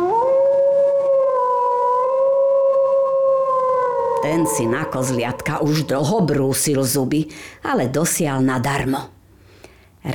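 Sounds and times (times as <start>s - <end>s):
wolf howling: 0.0s - 6.5s
speech: 4.2s - 9.2s.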